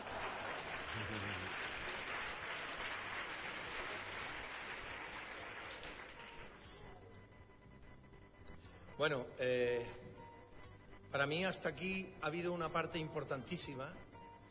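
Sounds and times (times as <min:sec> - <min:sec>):
audience applauding: 0:00.0 - 0:06.7
speech: 0:01.0 - 0:01.7, 0:09.0 - 0:10.2, 0:11.1 - 0:14.1.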